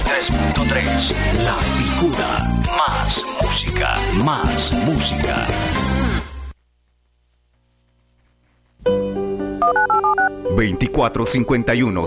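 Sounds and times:
speech: 0.2 - 6.2, 10.6 - 12.0
telephone keypad dialing tones in a radio station jingle: 9.6 - 10.4.

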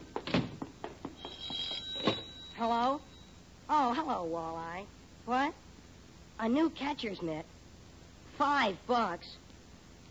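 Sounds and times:
telephone bell ringing: 1.2 - 3.4
speech: 2.6 - 3.1, 3.7 - 5.6, 6.4 - 7.5, 8.4 - 9.4.

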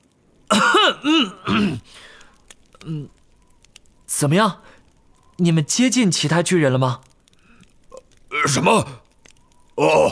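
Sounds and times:
person clearing throat loudly: 0.5 - 1.9
speech: 0.5 - 2.0, 2.8 - 3.2, 4.2 - 4.7, 5.4 - 7.1, 8.4 - 9.0, 9.8 - 10.0.

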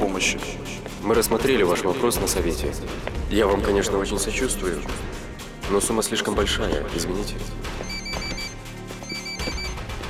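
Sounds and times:
speech: 0.1 - 7.9
electronic telephone ringing: 7.8 - 9.8.

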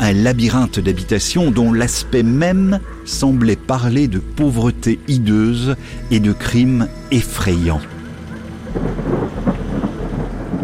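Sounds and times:
speech: 0.0 - 7.9
torrential rain pouring: 7.4 - 10.6
thunder rolling: 8.0 - 10.6.

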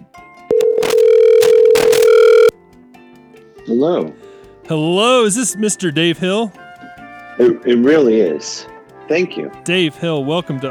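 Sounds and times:
single loud electronic telephone ring: 0.5 - 2.6
speech: 3.7 - 6.6, 7.4 - 10.6.

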